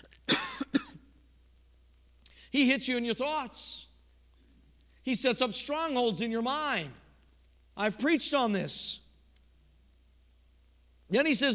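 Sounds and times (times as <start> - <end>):
person coughing: 0.0 - 1.1
speech: 2.5 - 3.9, 5.0 - 7.0, 7.8 - 9.0, 11.1 - 11.5.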